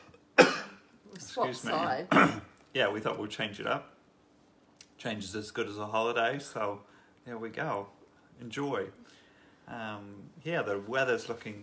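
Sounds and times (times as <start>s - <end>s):
single sharp cough: 0.4s - 0.8s, 2.1s - 2.5s
speech: 1.3s - 4.0s, 5.0s - 11.6s.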